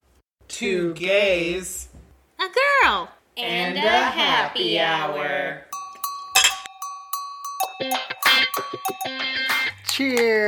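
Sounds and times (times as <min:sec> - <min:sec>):
speech: 0:00.6 - 0:05.7, 0:10.0 - 0:10.4
glasses clinking in a toast: 0:05.8 - 0:09.8.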